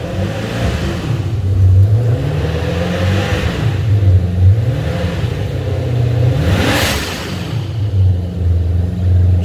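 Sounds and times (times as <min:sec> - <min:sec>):
turbocharged car engine idling at about 1500 rpm: 0:00.0 - 0:09.4
whirring turbo whine of a car engine: 0:00.0 - 0:09.4.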